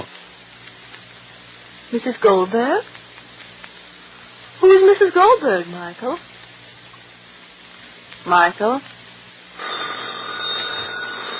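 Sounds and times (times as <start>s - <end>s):
speech: 1.9s - 3.0s, 4.9s - 6.3s, 8.2s - 8.9s
telephone ringing with a sustained buzzing ring: 9.6s - 11.3s.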